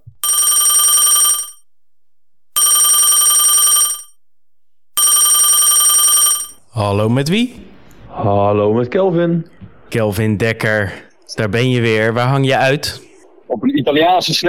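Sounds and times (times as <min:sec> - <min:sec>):
telephone ringing with a bright rapid electronic trill: 0:00.2 - 0:01.6, 0:02.6 - 0:04.2, 0:05.0 - 0:06.6
speech: 0:06.8 - 0:14.4.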